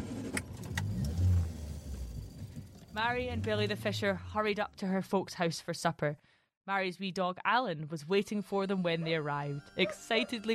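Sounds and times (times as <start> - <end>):
four-wheel-drive van engine starting and driving off: 0.0 - 4.8
speech: 3.0 - 10.5.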